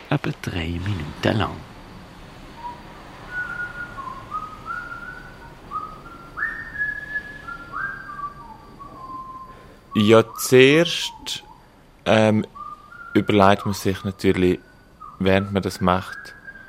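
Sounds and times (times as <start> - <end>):
faint noise: 0.0 - 16.6
speech: 0.2 - 1.7, 10.0 - 12.5, 13.2 - 16.4
person whistling a simple melody: 2.6 - 11.6, 12.5 - 14.0.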